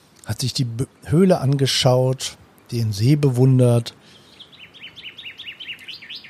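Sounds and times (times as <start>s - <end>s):
soft outdoor hiss: 0.0s - 6.2s
speech: 0.2s - 4.1s
birds chirping and singing: 3.6s - 6.2s.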